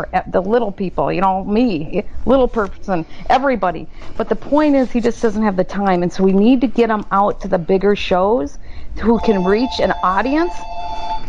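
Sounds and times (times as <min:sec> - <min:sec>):
speech: 0:00.0 - 0:11.0
phone ringing with a steady electronic tone: 0:09.1 - 0:11.2.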